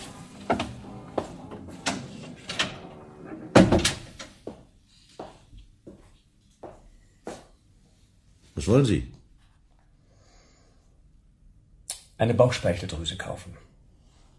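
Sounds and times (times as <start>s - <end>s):
door opening as a visitor comes in: 0.0s - 4.4s
speech: 8.6s - 9.2s, 12.2s - 13.7s.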